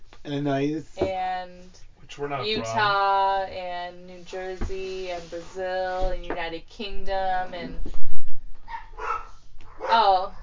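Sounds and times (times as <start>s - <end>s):
speech: 0.2s - 8.0s, 9.9s - 10.4s
dogs barking: 8.6s - 10.4s.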